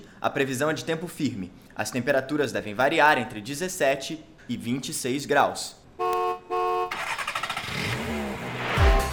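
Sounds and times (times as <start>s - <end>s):
speech: 0.2s - 5.8s
horn-like tone in traffic: 6.0s - 7.0s, 8.8s - 9.1s
car engines revving and accelerating: 7.1s - 9.1s.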